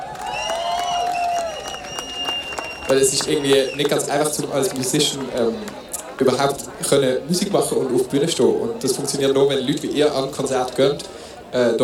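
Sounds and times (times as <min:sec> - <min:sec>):
live audience cheering with whoops or whistles: 0:00.0 - 0:04.8
live audience clapping: 0:00.0 - 0:06.5
speech: 0:02.9 - 0:11.8.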